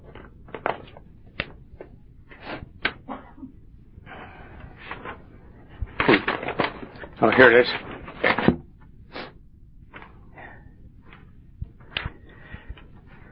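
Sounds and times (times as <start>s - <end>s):
paper pages being handled and shuffled: 0.0s - 3.0s, 4.8s - 8.6s
speech: 7.2s - 7.9s.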